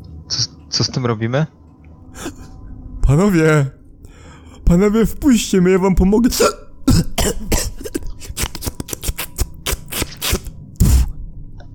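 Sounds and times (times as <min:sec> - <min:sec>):
speech: 0:00.3 - 0:01.6, 0:03.1 - 0:03.8, 0:04.7 - 0:07.6
voice imitating choking behind a door: 0:06.9 - 0:11.1.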